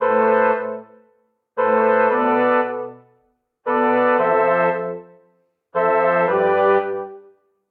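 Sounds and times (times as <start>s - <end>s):
brass quartet MIDI chord progression in A minor: 0.0s - 1.0s, 1.6s - 7.4s.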